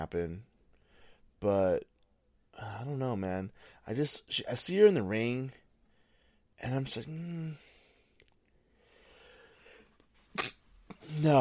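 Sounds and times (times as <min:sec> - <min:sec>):
speech: 0:00.0 - 0:00.5, 0:01.4 - 0:01.9, 0:02.6 - 0:05.6, 0:06.6 - 0:07.7, 0:10.4 - 0:11.3
person sneezing: 0:10.3 - 0:11.2.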